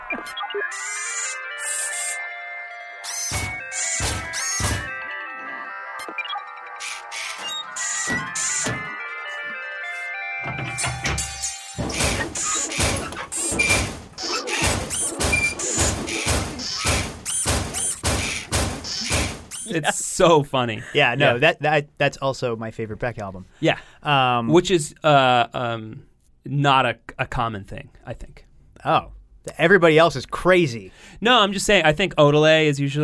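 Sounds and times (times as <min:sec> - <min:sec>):
sustained electronic tones: 0:00.0 - 0:12.8
speech: 0:00.2 - 0:01.2, 0:19.7 - 0:33.0
mechanical clanks and heavy metallic thuds: 0:03.3 - 0:04.9, 0:08.1 - 0:08.9, 0:10.4 - 0:19.5.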